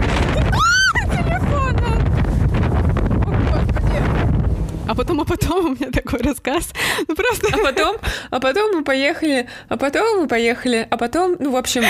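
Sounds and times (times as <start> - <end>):
sea waves around a boat: 0.0 - 5.6
strong wind buffeting the microphone on a boat at sea: 0.0 - 8.2
speech: 5.2 - 11.8
laughter: 7.3 - 8.0.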